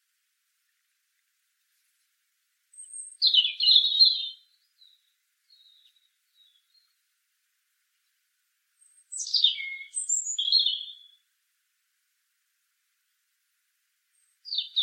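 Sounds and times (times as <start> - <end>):
European robin Erithacus rubecula singing thin warbled phrases: 2.7 - 7.0, 8.7 - 11.3, 14.1 - 14.8.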